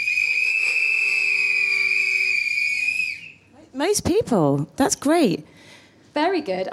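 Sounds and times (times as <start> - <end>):
audience members whistling: 0.0 - 3.5
speech: 3.8 - 6.7.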